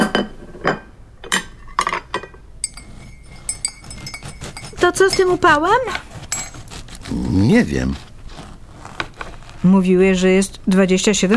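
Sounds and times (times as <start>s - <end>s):
dishes, glasses and cutlery clinking as a table is set: 0.0s - 6.9s
speech: 4.9s - 6.1s, 7.1s - 8.0s, 9.6s - 11.3s.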